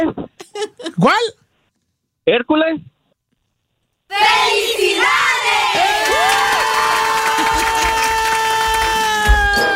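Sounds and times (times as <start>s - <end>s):
speech: 0.0s - 1.4s, 2.3s - 2.9s, 4.1s - 6.7s
several voices shouting and cheering in celebration: 4.1s - 9.7s.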